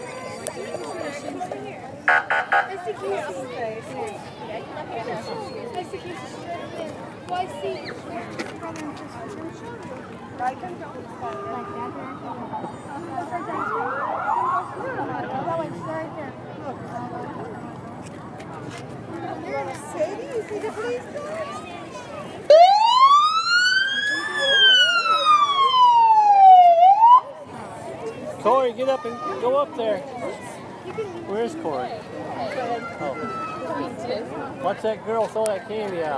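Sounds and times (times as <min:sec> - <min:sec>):
busy crowd murmuring: 0:00.0 - 0:36.1
speech: 0:02.8 - 0:17.6, 0:18.7 - 0:21.6, 0:28.7 - 0:36.1
police siren wailing: 0:13.1 - 0:15.0, 0:22.5 - 0:27.3.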